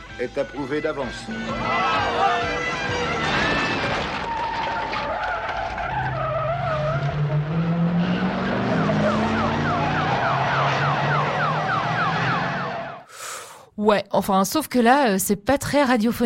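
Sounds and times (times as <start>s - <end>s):
speech: 0.2s - 3.4s, 13.8s - 16.2s
screeching tires in a film car chase: 0.6s - 13.0s
overlapping wailing police sirens: 0.6s - 13.1s
roaring engines in a film car chase: 0.6s - 13.1s.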